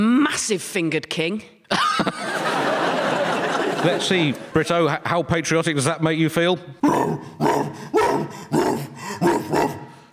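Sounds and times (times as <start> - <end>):
speech: 0.0 - 2.3, 3.8 - 8.0
laughter: 1.7 - 5.3
dog barking deep and gruff: 7.0 - 10.1.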